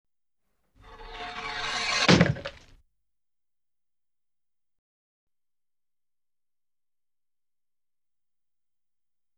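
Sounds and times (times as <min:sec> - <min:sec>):
guillotine: 0:00.8 - 0:02.7.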